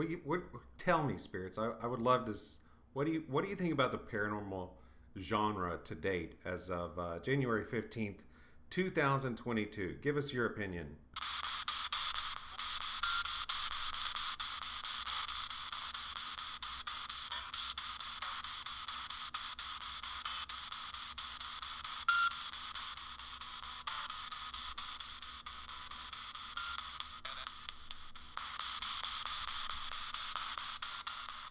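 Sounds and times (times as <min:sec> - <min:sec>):
speech: 0:00.0 - 0:11.3
spirit box static crackles: 0:11.2 - 0:31.4.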